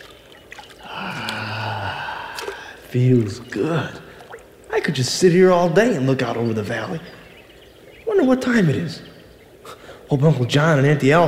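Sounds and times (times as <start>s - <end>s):
feet slipping into trickling spring water: 0.0s - 4.7s
breathy gasp: 0.8s - 2.9s
speech: 2.9s - 4.0s, 4.8s - 7.2s, 8.2s - 9.1s, 10.1s - 11.2s.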